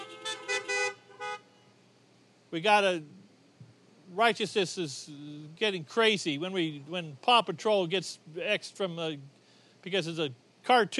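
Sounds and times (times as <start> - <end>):
several car horns honking: 0.0 - 1.7
speech: 2.5 - 3.2, 4.1 - 10.9.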